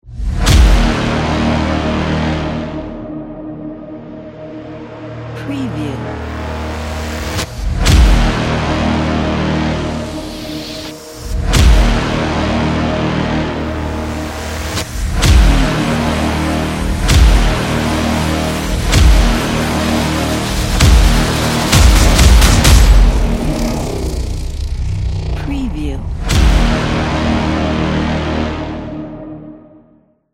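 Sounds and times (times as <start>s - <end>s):
epic trailer music: 0.0s - 30.2s.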